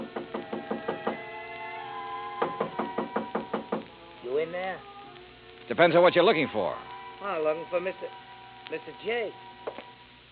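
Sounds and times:
quick firm knocking on a hotel room door: 0:00.0 - 0:01.2, 0:02.4 - 0:03.9
speech: 0:04.4 - 0:04.9, 0:05.7 - 0:09.8.

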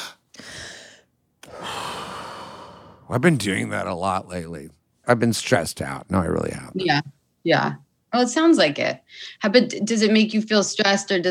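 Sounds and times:
deep breaths: 0:00.0 - 0:03.2
speech: 0:03.1 - 0:11.2.

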